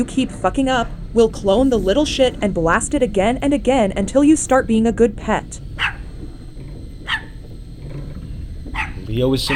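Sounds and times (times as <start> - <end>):
speech: 0.0 - 5.6, 9.2 - 9.5
low steady rumble: 0.0 - 9.5
male dog barking: 5.8 - 6.0, 7.0 - 7.4, 8.7 - 9.5.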